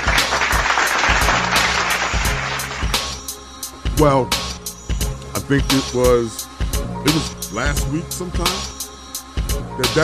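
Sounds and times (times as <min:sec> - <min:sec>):
loud round of applause from a crowd: 0:00.0 - 0:03.2
speech: 0:04.0 - 0:04.5, 0:05.5 - 0:08.7, 0:09.8 - 0:10.0.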